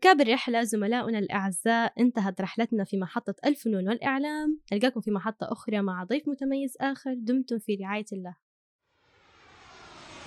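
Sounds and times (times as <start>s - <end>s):
speech: 0.0s - 8.4s
jet airplane engine roar approaching overhead: 9.0s - 10.2s.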